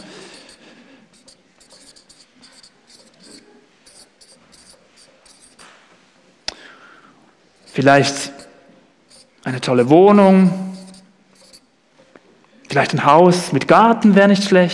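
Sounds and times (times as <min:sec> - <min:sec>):
pen writing on paper: 0:00.0 - 0:05.7, 0:07.6 - 0:09.4, 0:10.2 - 0:11.7
speech: 0:07.8 - 0:08.4, 0:09.6 - 0:10.6, 0:12.8 - 0:14.7.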